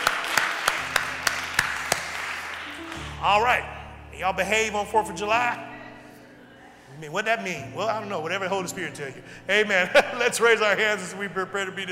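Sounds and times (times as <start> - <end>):
sharp claps in praise to God: 0.0 - 3.2
speech: 3.2 - 5.7, 6.9 - 11.9.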